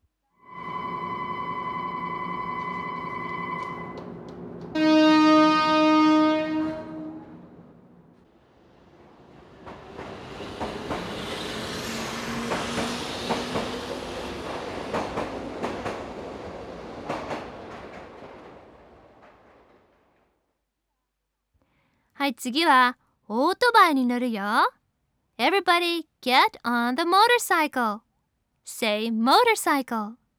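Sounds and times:
train horn blasts: 0.4s - 7.7s
train starting and running with rhythmic clatter: 0.6s - 20.4s
speech: 22.3s - 24.8s, 25.4s - 28.0s, 28.7s - 30.2s.

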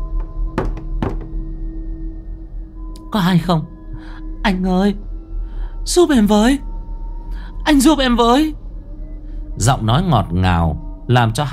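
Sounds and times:
heavy knocking on a door at night: 0.1s - 1.5s
speech: 3.1s - 5.1s, 5.8s - 6.7s, 7.7s - 8.6s, 9.6s - 11.5s.

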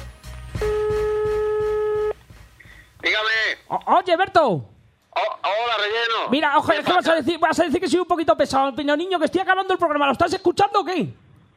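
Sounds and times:
telephone line tone of a call being placed: 0.6s - 2.2s
speech: 3.7s - 11.2s.

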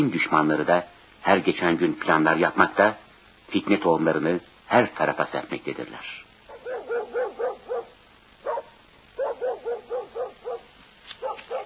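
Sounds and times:
speech: 0.0s - 6.2s
mangy stray dog barking outside a house: 6.5s - 11.6s.

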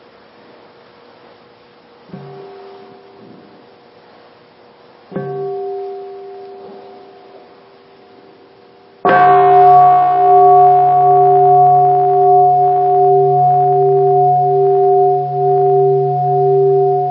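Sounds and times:
meditation bell ringing to close a Buddhist practice session: 5.2s - 17.0s.

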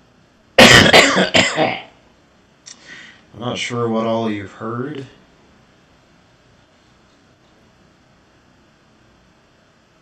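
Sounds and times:
person coughing: 0.6s - 2.0s
speech: 1.2s - 1.8s, 3.4s - 5.2s.

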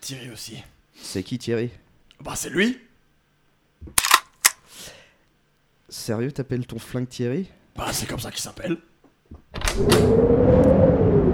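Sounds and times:
speech: 0.1s - 2.9s, 3.8s - 4.0s, 5.9s - 11.3s
door creaking open on a stormy day: 9.4s - 10.2s.

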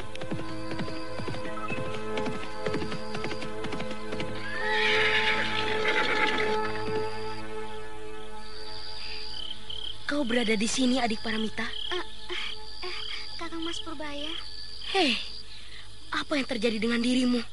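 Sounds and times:
horse hooves galloping: 0.0s - 7.2s
horse whinnying: 4.4s - 6.9s
speech: 10.4s - 11.8s, 13.8s - 15.3s, 16.3s - 17.5s.

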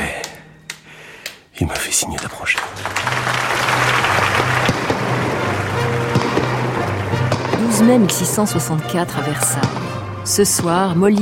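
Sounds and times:
applause at the royal court after a theatre performance: 0.2s - 8.2s
speech: 1.6s - 3.9s, 7.7s - 11.1s.

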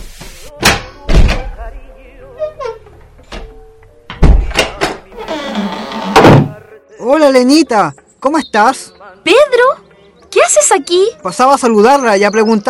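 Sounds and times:
front door being opened after knocking: 2.4s - 6.6s
speech: 7.3s - 12.6s.

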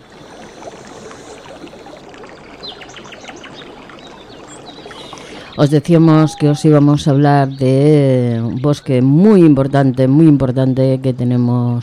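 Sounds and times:
water rushing in an oak wood: 0.0s - 11.1s
birds singing in an oak wood: 2.6s - 7.9s
speech: 5.6s - 11.8s.

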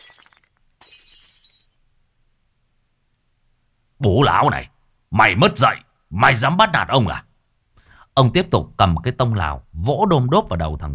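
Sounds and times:
ceramic bowl smashing and shattering against someone's back: 0.0s - 1.8s
speech: 4.0s - 7.3s, 8.2s - 10.9s.

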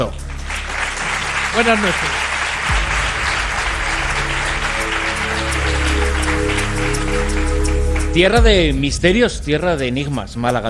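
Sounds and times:
speech: 0.0s - 0.2s, 1.5s - 2.3s, 8.2s - 10.6s
audience applause at a live evening event: 0.0s - 8.5s.

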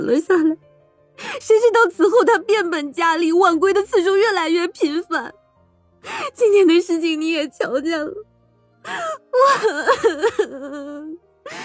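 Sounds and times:
speech: 0.0s - 5.4s, 6.1s - 11.6s
woman crying: 8.9s - 11.6s.

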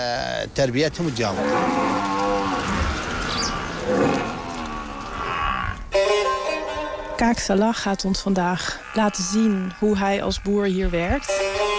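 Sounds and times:
speech: 0.0s - 1.9s, 3.9s - 4.2s, 7.2s - 11.5s
buffalo mooing in a farming village: 1.2s - 7.2s, 8.3s - 11.7s.

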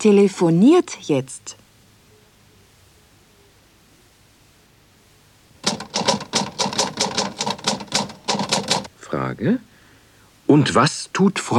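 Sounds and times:
speech: 0.0s - 1.6s, 9.3s - 9.7s, 10.5s - 11.5s
typewriter keystrokes: 5.6s - 8.9s.

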